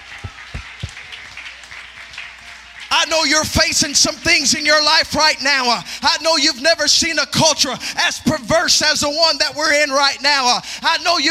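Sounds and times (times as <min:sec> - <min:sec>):
heavy rhythmic thumps: 0:00.0 - 0:01.2
crowd clapping in praise of God: 0:00.0 - 0:04.6
speech: 0:03.0 - 0:11.2.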